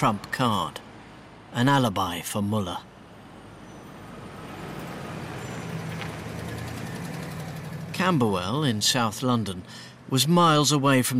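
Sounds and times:
speech: 0:00.0 - 0:00.8, 0:01.5 - 0:02.9, 0:08.0 - 0:11.1
nighttime road traffic rumbling: 0:00.0 - 0:11.1
vehicle passing whoosh: 0:03.4 - 0:08.0.

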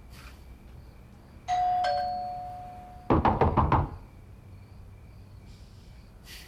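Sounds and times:
doorbell chiming: 0:01.5 - 0:03.1
sharp knocks on a door: 0:03.1 - 0:04.0.

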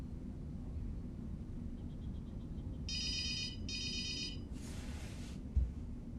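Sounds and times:
low rumble: 0:00.0 - 0:06.1
mobile phone ringing in bright trilling bursts: 0:02.9 - 0:04.5.

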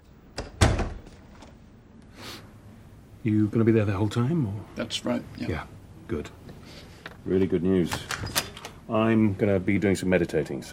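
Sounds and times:
door shut from a hallway: 0:00.4 - 0:01.5, 0:07.9 - 0:08.8
faint breathy noise: 0:02.1 - 0:02.8
speech: 0:03.2 - 0:10.7.

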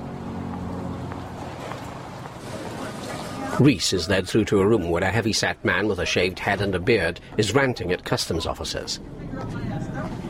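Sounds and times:
car engine humming as the car pulls away: 0:00.0 - 0:03.6
street noise: 0:00.0 - 0:10.2
speech: 0:03.6 - 0:09.6.

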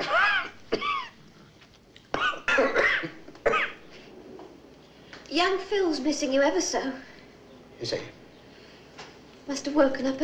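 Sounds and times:
harsh hacking coughs: 0:00.0 - 0:01.2, 0:02.2 - 0:03.8
speech: 0:05.4 - 0:07.1, 0:07.8 - 0:08.2, 0:09.5 - 0:10.2.

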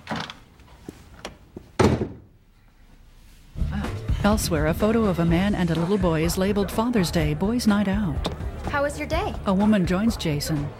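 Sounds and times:
heavy door slamming: 0:01.8 - 0:02.3
speech: 0:04.2 - 0:10.7.

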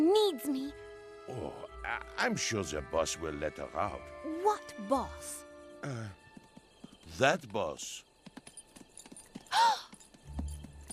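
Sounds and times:
speech: 0:00.2 - 0:06.2, 0:07.1 - 0:08.1
ridden horse hooves clip-clopping: 0:06.1 - 0:10.9.

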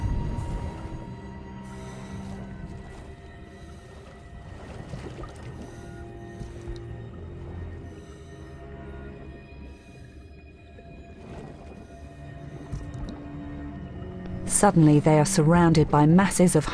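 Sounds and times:
air bubbles from scuba divers underwater: 0:00.0 - 0:13.3
steady low droning tones underwater: 0:00.0 - 0:16.7
speech: 0:14.6 - 0:16.7.

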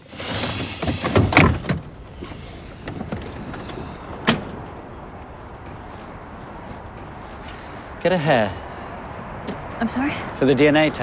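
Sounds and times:
car door handles and latches clicking open: 0:00.8 - 0:04.7
speech: 0:08.0 - 0:08.6, 0:09.8 - 0:11.0.

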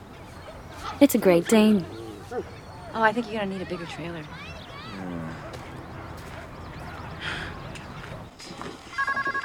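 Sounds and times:
busy noise: 0:00.0 - 0:09.4
speech: 0:01.0 - 0:05.4
telephone ringing with pulsing electronic trill: 0:08.9 - 0:09.4.

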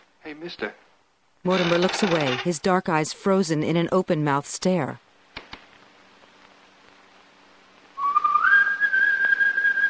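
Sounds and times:
speech: 0:00.4 - 0:00.8, 0:01.4 - 0:05.0
person whistling a sustained rising note: 0:08.0 - 0:09.8.

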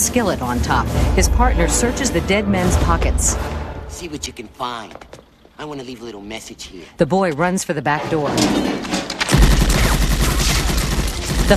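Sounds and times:
speech: 0:00.0 - 0:09.1
Tommy gun firing a burst of bullets into a wall: 0:09.2 - 0:11.5.

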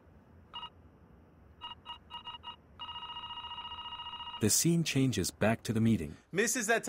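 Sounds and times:
electronic doorbell ringing: 0:01.6 - 0:04.4
speech: 0:04.4 - 0:06.8.

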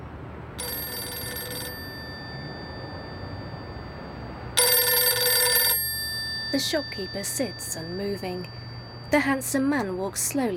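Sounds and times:
mobile phone ringing after a number is dialed: 0:00.6 - 0:10.2
speech: 0:06.5 - 0:10.5.

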